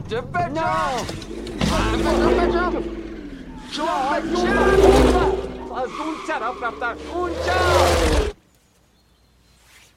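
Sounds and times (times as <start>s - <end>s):
car engine starting and driving off: 0.0s - 8.4s
speech: 0.1s - 3.1s, 3.7s - 8.2s
excited voices talking: 0.4s - 8.4s.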